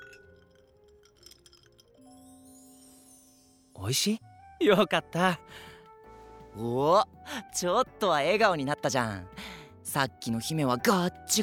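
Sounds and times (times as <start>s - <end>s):
glasses clinking together in a toast: 0.0s - 3.5s
speech: 3.8s - 5.7s, 6.6s - 11.4s.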